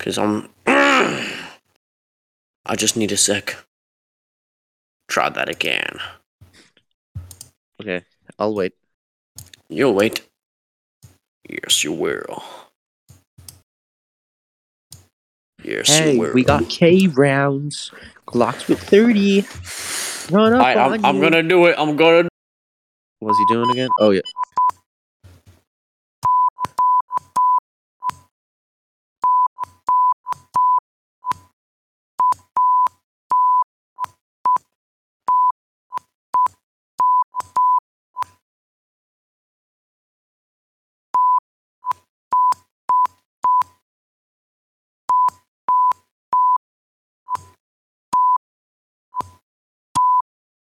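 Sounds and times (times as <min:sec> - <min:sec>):
speech: 0:00.0 - 0:01.4, 0:02.6 - 0:03.7, 0:05.1 - 0:06.2, 0:07.8 - 0:08.8, 0:09.4 - 0:10.3, 0:11.5 - 0:12.7, 0:15.6 - 0:22.3, 0:23.2 - 0:24.5
Morse code beeps from a steady keyed tone: 0:23.3 - 0:24.7, 0:26.2 - 0:27.6, 0:29.2 - 0:31.4, 0:32.2 - 0:33.6, 0:35.3 - 0:35.5, 0:36.4 - 0:37.8, 0:41.2 - 0:41.4, 0:42.3 - 0:43.7, 0:45.1 - 0:46.6, 0:48.2 - 0:48.4, 0:50.0 - 0:50.2.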